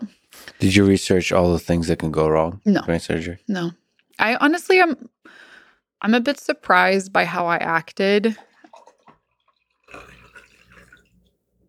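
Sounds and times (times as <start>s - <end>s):
speech: 0.6s - 5.4s, 6.0s - 8.5s
light drips: 8.4s - 11.6s
liquid pouring into a glass: 8.5s - 11.6s.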